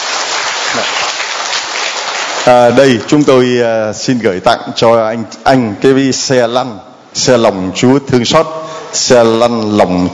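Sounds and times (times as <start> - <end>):
church congregation applauding: 0.0 - 3.2
speech: 0.8 - 1.0, 2.4 - 10.1.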